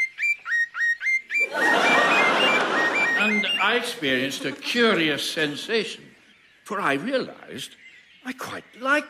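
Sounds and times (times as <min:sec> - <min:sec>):
faint whistled notes: 0:00.0 - 0:04.1
birds chirping: 0:00.0 - 0:09.0
laughter: 0:01.4 - 0:05.4
speech: 0:03.5 - 0:06.1, 0:06.7 - 0:09.0.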